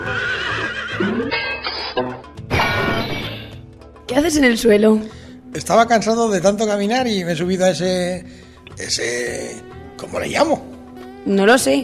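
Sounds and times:
horse neighing as it refuses to be ridden: 0.0s - 1.9s
speech: 2.0s - 2.2s, 4.2s - 10.6s, 11.2s - 11.8s.

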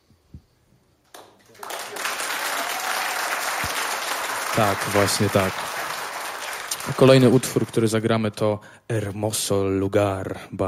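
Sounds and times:
concert audience applause: 1.1s - 7.9s
speech: 4.6s - 5.7s, 7.0s - 10.6s.

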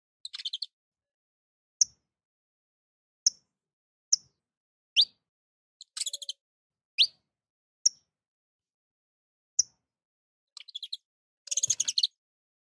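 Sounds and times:
Portuguese domestic canary calling: 0.2s - 0.7s, 10.6s - 12.2s.

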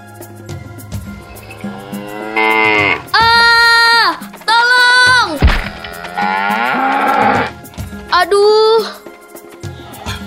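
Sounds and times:
water buffalo lowing after its tail is pulled: 1.2s - 7.7s.

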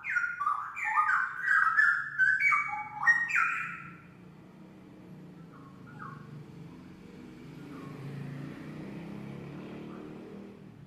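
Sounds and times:
oriental magpie-robin song: 0.0s - 4.2s, 5.4s - 6.3s, 7.6s - 8.1s.

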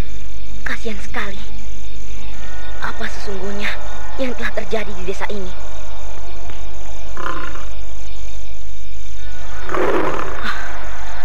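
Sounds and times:
constant low hum: 0.0s - 11.2s
speech: 0.6s - 1.6s, 2.9s - 5.8s, 7.2s - 7.6s
tiger roaring in a village: 9.6s - 10.5s.

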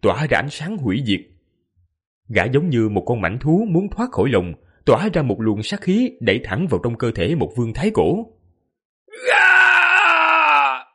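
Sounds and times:
speech: 0.0s - 1.3s, 2.3s - 8.4s
man screaming in agony: 9.1s - 10.9s.

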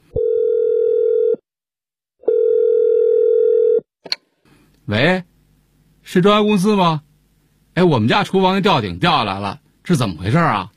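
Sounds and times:
telephone dial tone calling a renovation company: 0.2s - 1.4s, 2.2s - 3.9s
speech: 4.9s - 5.3s, 6.1s - 7.1s, 7.8s - 10.7s.

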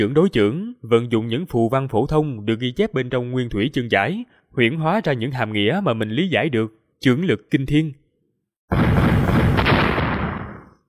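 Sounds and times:
speech: 0.0s - 8.0s, 8.7s - 9.1s
heavy impact boom for two fists clashing: 8.7s - 10.8s.

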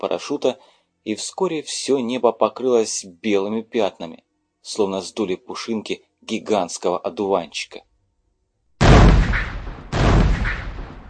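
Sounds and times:
speech: 0.0s - 7.9s
bombs exploding in a battle: 8.8s - 11.0s
ship artillery firing in a battle: 8.8s - 11.0s.

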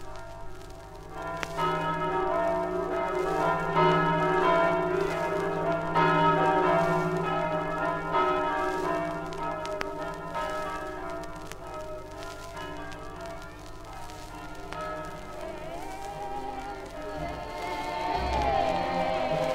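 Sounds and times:
church bells ringing as a fishermen's procession returns to port in a Marano fishing town: 0.0s - 19.5s.

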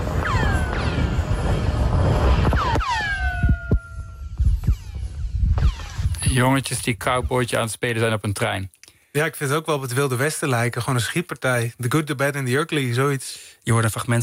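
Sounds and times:
laser-like chirps from a chunk of ice dropped into a 150-metre-deep borehole in Antarctica: 0.2s - 1.4s, 2.4s - 6.2s
speech: 6.4s - 14.2s.

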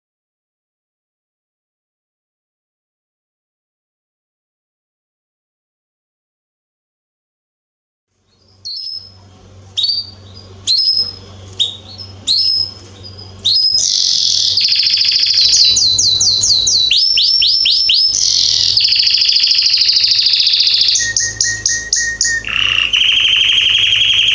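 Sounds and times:
faint low hum: 8.1s - 24.3s
male Belgian canary singing strongly: 8.3s - 24.3s.

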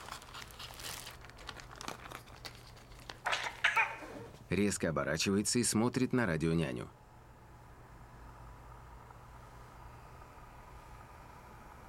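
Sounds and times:
plastic bag of fish crinkling and tearing as it is cut open in a kitchen: 0.0s - 3.6s
speech: 4.5s - 7.0s.

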